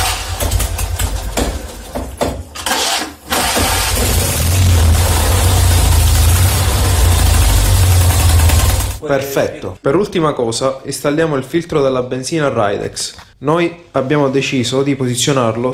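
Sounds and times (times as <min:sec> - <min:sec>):
two-cylinder 650 engine started and idling after valve adjustment and new oil: 0:00.0 - 0:01.7, 0:02.6 - 0:09.0
speech: 0:09.1 - 0:15.7.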